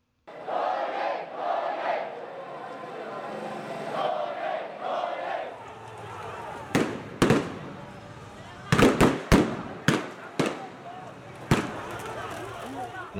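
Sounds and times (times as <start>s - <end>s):
crowd shouting at a street protest in Naypyidaw Myanmar: 0.3s - 13.1s
murmur of people on a street during a protest: 0.3s - 13.1s
gunshots at a street protest in Naypyidaw Myanmar: 6.7s - 7.8s, 8.7s - 10.9s, 11.5s - 12.1s.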